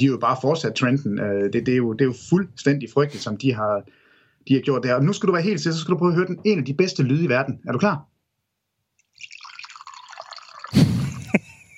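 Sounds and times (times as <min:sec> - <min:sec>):
speech: 0:00.0 - 0:08.1
coffee being poured: 0:09.0 - 0:11.4.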